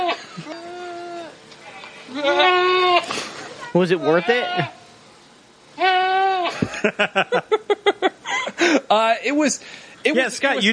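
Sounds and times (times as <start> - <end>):
goat bleating in a played video: 0.0 - 3.1, 4.0 - 4.8, 5.8 - 6.6
laughter: 0.1 - 0.8, 6.5 - 8.9
speech: 3.8 - 4.8, 6.8 - 7.6, 8.9 - 10.7.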